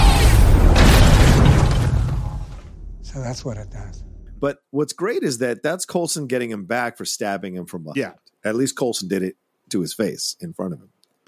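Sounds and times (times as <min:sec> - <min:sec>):
gun fired in an action film scene: 0:00.0 - 0:03.0
speech: 0:03.3 - 0:11.2.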